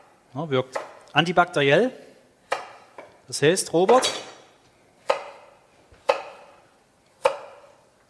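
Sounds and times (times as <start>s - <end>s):
speech: 0.4s - 2.0s, 3.3s - 4.3s
knife chopping ginger into strips on a board: 0.7s - 1.0s, 2.5s - 3.1s, 5.0s - 6.6s, 7.2s - 7.8s.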